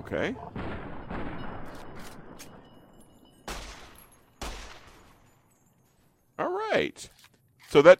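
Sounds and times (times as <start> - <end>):
speech: 0.0 - 0.7, 6.8 - 7.9
gunshots from a calibre 45 weapon in a video game: 0.4 - 2.7, 3.5 - 5.2.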